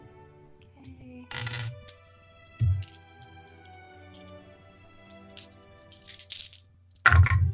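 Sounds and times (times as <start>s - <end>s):
many dice tumbling and knocking together on a table: 1.3s - 4.3s, 5.1s - 7.4s.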